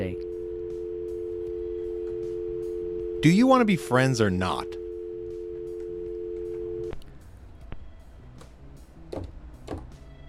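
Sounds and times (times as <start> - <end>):
telephone dial tone on the line: 0.0 - 7.0
speech: 3.2 - 4.8.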